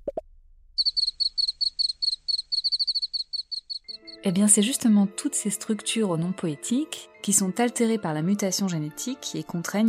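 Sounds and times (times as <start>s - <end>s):
cricket chirping by rubbing its wings: 0.8s - 4.2s
speech: 4.2s - 9.8s.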